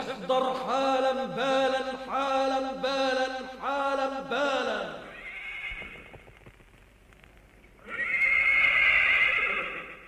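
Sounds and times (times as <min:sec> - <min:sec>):
speech: 0:00.3 - 0:05.0
horse whinnying: 0:05.1 - 0:06.1, 0:07.8 - 0:10.0.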